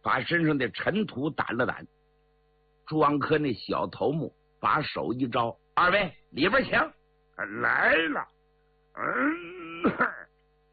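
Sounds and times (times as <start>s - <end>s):
speech: 0.0s - 2.0s, 2.9s - 8.3s, 9.0s - 10.2s
man fake coughing: 9.0s - 10.3s.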